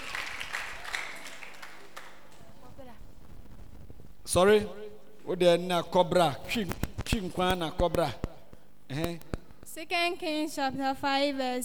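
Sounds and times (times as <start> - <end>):
audience clapping: 0.0 - 2.6
speech: 4.3 - 8.3, 8.9 - 11.6.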